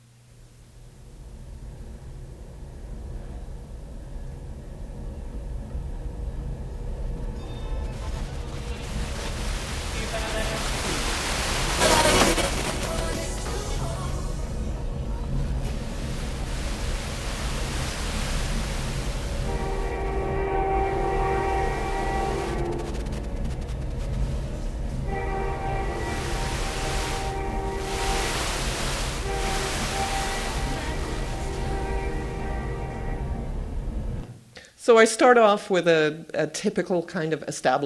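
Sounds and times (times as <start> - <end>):
passenger train rolling along the rails: 1.0 - 34.3
sustained tonal blasts: 19.1 - 34.3
speech: 34.9 - 37.8.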